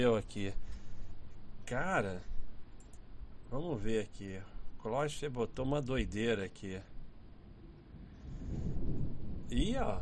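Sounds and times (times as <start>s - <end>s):
speech: 0.0s - 0.6s, 1.7s - 2.3s, 3.5s - 6.9s, 9.5s - 9.9s
faint hiss of rain or wind: 0.0s - 9.9s
low rolling thunder rumbling: 7.6s - 9.9s.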